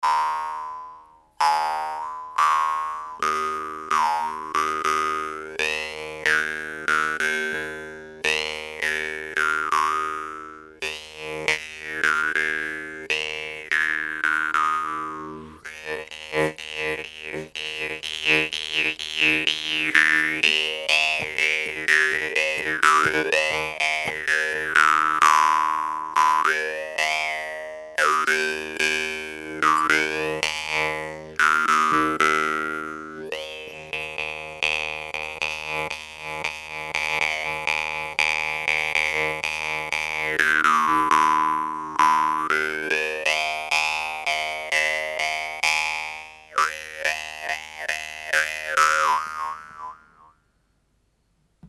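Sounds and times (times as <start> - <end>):
lyre: 0.0 - 50.4.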